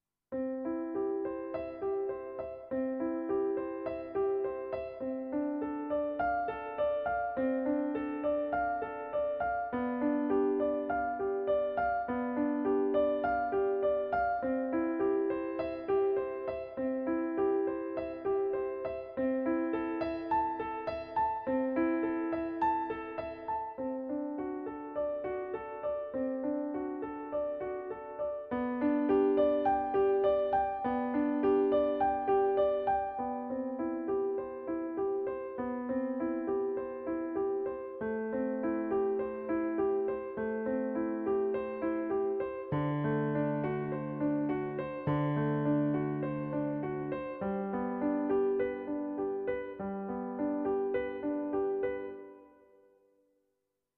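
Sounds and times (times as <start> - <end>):
mellow piano: 0.0 - 53.3.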